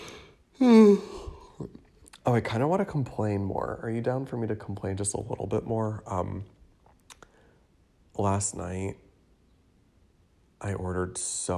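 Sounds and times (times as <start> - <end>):
person yawning: 0.0 - 1.8
speech: 0.9 - 6.6, 8.2 - 9.0, 10.6 - 11.5.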